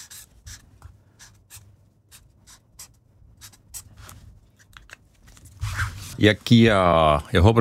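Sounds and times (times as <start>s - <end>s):
pen scratching across a notepad writing a grade: 0.0s - 4.2s
speech: 6.2s - 7.6s.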